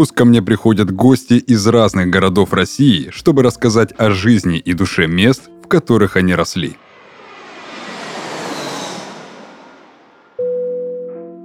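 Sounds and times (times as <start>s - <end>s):
speech: 0.0s - 6.8s
airplane engine roar as the plane prepares to land in Khabarovsk, Russia: 6.4s - 10.4s.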